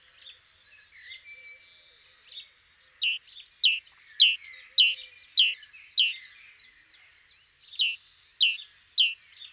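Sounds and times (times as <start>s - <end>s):
great tit Parus major calling: 2.9s - 6.4s, 7.5s - 9.5s.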